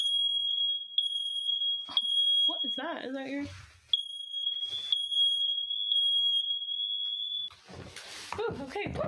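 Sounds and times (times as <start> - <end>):
smoke detector alarm blaring shrill steady tone: 0.0 - 3.2, 3.9 - 7.6
speech: 1.9 - 3.8, 7.7 - 9.0.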